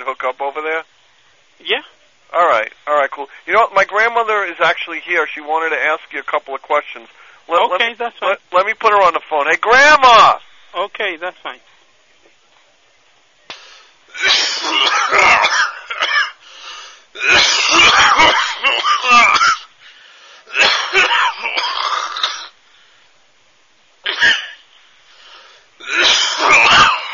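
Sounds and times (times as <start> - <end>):
speech: 0.1 - 0.9, 1.6 - 11.7
woman clearing her throat: 14.2 - 16.4, 17.2 - 19.6, 20.5 - 22.5, 24.1 - 24.6, 25.8 - 27.1.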